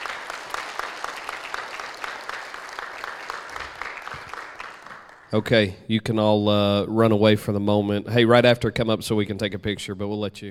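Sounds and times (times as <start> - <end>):
crowd applause for graduates: 0.0 - 5.4
speech: 5.3 - 10.5.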